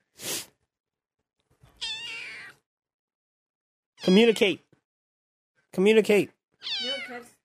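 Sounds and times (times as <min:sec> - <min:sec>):
kitten meowing: 0:01.8 - 0:02.6, 0:06.6 - 0:07.2
speech: 0:04.0 - 0:04.6, 0:05.7 - 0:07.3.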